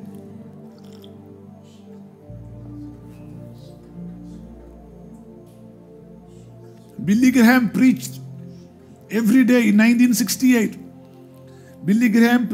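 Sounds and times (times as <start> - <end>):
person drinking water: 0.1 - 2.3
speech: 7.1 - 8.2, 9.1 - 10.8, 11.8 - 12.5.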